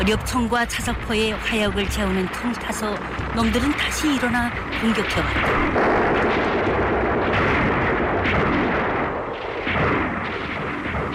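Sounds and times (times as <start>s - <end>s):
speech: 0.0s - 6.6s
continuous loud roar of battle: 0.0s - 11.1s
booming artillery blasts: 1.8s - 11.1s
gunfire: 2.3s - 11.1s.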